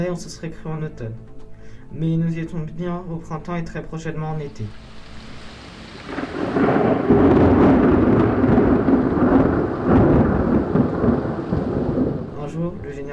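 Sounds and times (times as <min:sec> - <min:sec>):
speech: 0:00.0 - 0:04.9
heavy rain pouring: 0:04.6 - 0:13.1
deep rolling rumble of thunder: 0:05.4 - 0:13.1.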